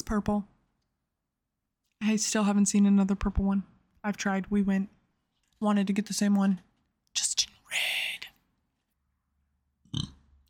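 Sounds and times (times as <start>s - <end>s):
speech: 0.1s - 0.5s, 2.0s - 5.0s, 5.6s - 7.3s
short throaty burp: 9.8s - 10.3s.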